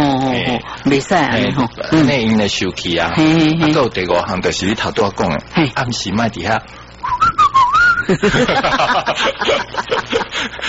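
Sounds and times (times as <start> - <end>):
speech: 0.6 - 6.8, 8.1 - 10.6
person whistling: 7.0 - 8.1
snickering laughter: 8.0 - 10.6.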